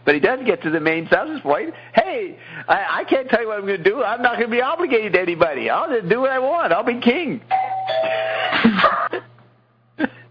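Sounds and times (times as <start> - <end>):
speech: 0.0 - 9.1
doorbell ringing: 7.5 - 8.5.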